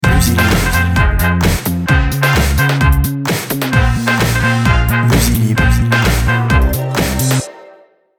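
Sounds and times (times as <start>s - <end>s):
electro swing music: 0.0s - 7.5s.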